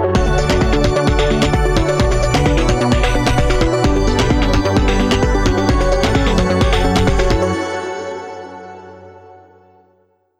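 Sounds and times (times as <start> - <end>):
melodies: 0.2 - 9.8.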